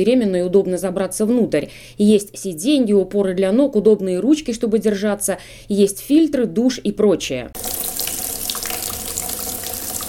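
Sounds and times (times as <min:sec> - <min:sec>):
speech: 0:00.0 - 0:07.7
water gushing from a tap to fill a birthing bathtub in a maternity ward: 0:07.6 - 0:10.0.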